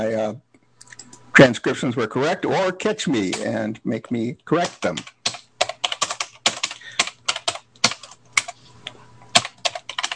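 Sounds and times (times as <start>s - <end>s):
speech: 0.0s - 0.5s, 1.4s - 5.2s
typing on a computer keyboard: 4.6s - 10.1s.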